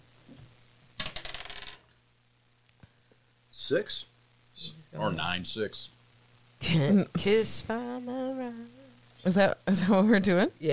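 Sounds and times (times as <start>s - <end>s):
quiet hum: 0.0s - 10.7s
dice rolled on a hard surface: 1.0s - 1.8s
speech: 3.7s - 6.0s, 6.6s - 10.7s.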